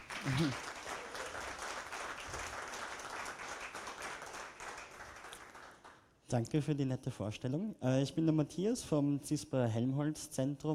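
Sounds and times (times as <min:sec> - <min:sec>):
audience applause: 0:00.0 - 0:05.8
low voice murmur: 0:00.2 - 0:00.6
speech: 0:00.2 - 0:00.7, 0:06.3 - 0:10.7.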